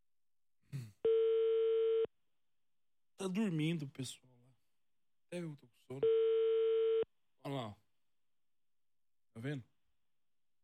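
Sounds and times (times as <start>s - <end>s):
telephone ringback tone on an unanswered call: 1.1s - 2.1s, 6.0s - 7.0s
speech: 3.2s - 4.3s, 5.3s - 6.2s, 7.4s - 7.8s, 9.4s - 9.7s.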